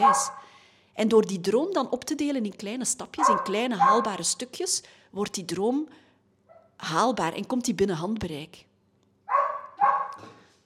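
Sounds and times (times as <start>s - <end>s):
speech: 0.0s - 0.4s, 1.0s - 6.0s, 6.8s - 8.7s
dog barking outside in the cold: 0.0s - 0.5s, 3.2s - 4.3s, 9.3s - 10.3s
dog whining: 3.2s - 4.1s, 9.3s - 10.2s.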